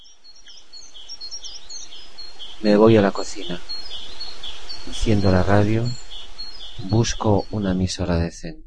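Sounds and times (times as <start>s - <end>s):
birds chirping and twittering in a tree on a sunny morning: 0.0s - 8.3s
soft outdoor background: 0.0s - 8.6s
speech: 2.6s - 3.7s, 4.9s - 6.0s, 6.8s - 8.6s.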